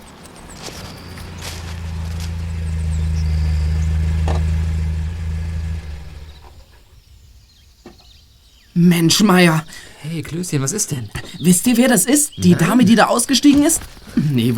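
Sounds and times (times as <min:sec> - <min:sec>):
faint footsteps: 0:00.0 - 0:06.6
car's low engine rumble as it approaches: 0:00.0 - 0:07.1
speech: 0:08.8 - 0:14.5.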